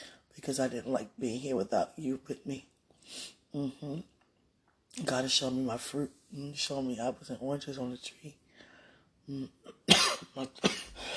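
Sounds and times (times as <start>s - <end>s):
speech: 0.4s - 4.1s, 5.0s - 8.4s, 9.3s - 10.8s
person humming a brief murmur: 3.6s - 4.1s, 9.3s - 9.7s
dry hacking coughs: 9.7s - 11.1s.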